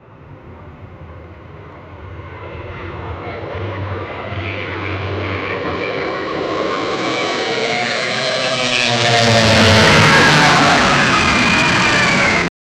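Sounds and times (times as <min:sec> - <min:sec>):
plane crashing: 0:05.0 - 0:12.5.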